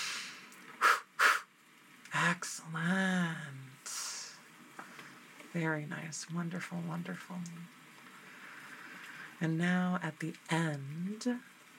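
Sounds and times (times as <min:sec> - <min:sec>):
breaths from a guided breathing exercise: 0:00.0 - 0:01.5, 0:08.2 - 0:09.4
speech: 0:02.4 - 0:02.9, 0:05.5 - 0:07.8, 0:09.4 - 0:11.5.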